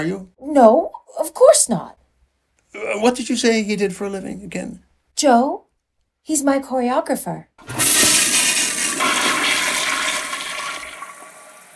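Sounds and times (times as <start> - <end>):
speech: 0.0 - 2.0, 2.7 - 5.6, 6.2 - 8.2
toilet flushing: 7.6 - 11.7.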